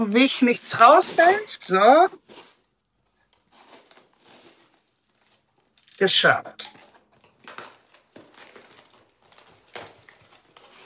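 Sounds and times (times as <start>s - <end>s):
speech: 0.0s - 2.4s, 6.0s - 6.8s
paper crinkling in a parcel box while packing: 0.0s - 10.8s.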